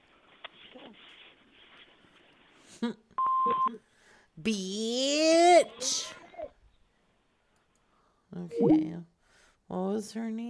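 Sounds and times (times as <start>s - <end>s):
speech: 2.8s - 3.0s, 3.6s - 6.2s, 8.4s - 9.1s, 9.7s - 10.4s
voicemail beep from an answering machine: 3.2s - 3.8s, 8.5s - 9.0s.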